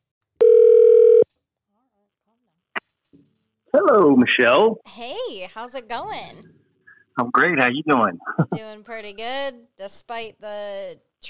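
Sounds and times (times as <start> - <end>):
telephone dial tone: 0.4 - 1.2
speech: 3.8 - 6.6, 7.2 - 11.2.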